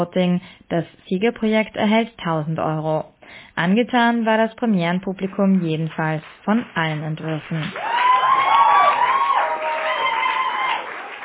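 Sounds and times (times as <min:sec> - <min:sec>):
speech: 0:00.0 - 0:08.0
theatre audience cheering loudly: 0:07.7 - 0:11.2.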